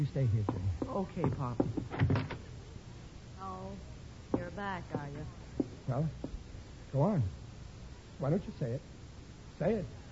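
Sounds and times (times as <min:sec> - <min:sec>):
speech: 0:00.0 - 0:02.2, 0:03.4 - 0:07.4, 0:08.2 - 0:08.9, 0:09.6 - 0:10.1
door banging shut: 0:01.7 - 0:02.4.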